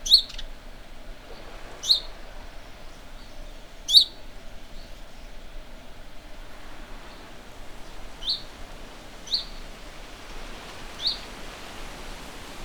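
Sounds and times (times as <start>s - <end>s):
house sparrow chirping: 0.0s - 0.5s, 3.9s - 4.2s, 7.0s - 10.0s, 10.6s - 11.4s
faint background hiss: 0.0s - 12.6s.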